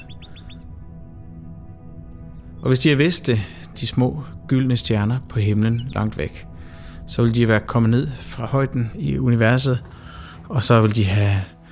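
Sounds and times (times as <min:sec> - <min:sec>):
nightingale chirping: 0:00.0 - 0:00.8, 0:04.9 - 0:07.0
speech: 0:02.6 - 0:06.5, 0:07.1 - 0:11.6.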